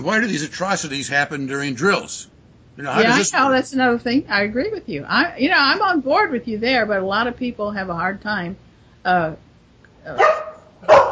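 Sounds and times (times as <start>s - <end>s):
speech: 0.0s - 9.4s, 10.0s - 11.0s
pet dog barking: 10.2s - 11.0s.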